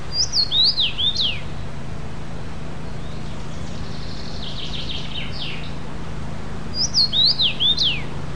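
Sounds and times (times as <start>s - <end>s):
common rosefinch: 0.1s - 1.8s, 2.8s - 5.9s, 6.7s - 8.2s.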